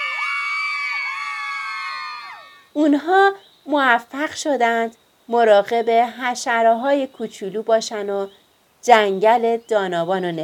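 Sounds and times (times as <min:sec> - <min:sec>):
loud crowd cheering and whooping: 0:00.0 - 0:02.7
shrieks and shouts: 0:00.0 - 0:02.7
speech: 0:02.8 - 0:10.4.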